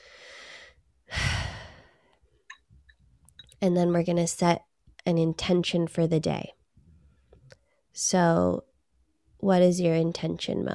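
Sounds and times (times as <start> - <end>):
deep breath during a tea-sipping relaxation exercise: 0.0 - 2.2
speech: 3.6 - 6.6, 8.0 - 8.7, 9.4 - 10.7.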